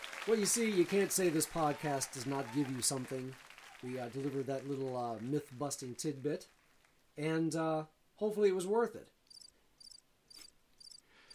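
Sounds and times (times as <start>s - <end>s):
speech: 0.2s - 6.6s, 7.2s - 9.2s
crickets chirping in short high trills: 9.3s - 11.3s.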